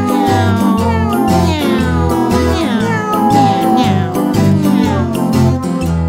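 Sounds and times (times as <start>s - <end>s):
kitten meowing: 0.0s - 5.4s
bouncy music backing: 0.0s - 6.0s.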